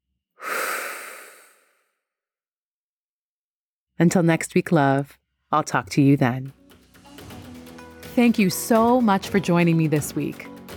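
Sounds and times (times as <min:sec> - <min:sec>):
deep breath in and out: 0:00.4 - 0:01.9
speech: 0:04.0 - 0:06.6, 0:08.2 - 0:10.5.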